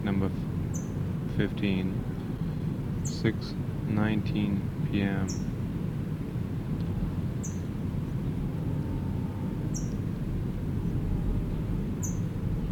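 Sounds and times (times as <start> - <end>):
steady low rumble: 0.0 - 12.7
speech: 0.2 - 0.5, 1.4 - 2.1, 3.2 - 5.5
adult Brown Towhee chipping at nest carrying food: 7.4 - 7.6, 9.7 - 10.0.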